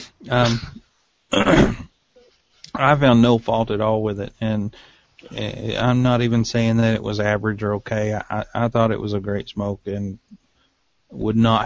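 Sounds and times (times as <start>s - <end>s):
speech: 0.2s - 1.8s, 2.8s - 10.3s, 11.1s - 11.6s
throat clearing with a voiced rumble: 0.2s - 1.9s
stifled breathy cough-like burst: 0.3s - 1.9s.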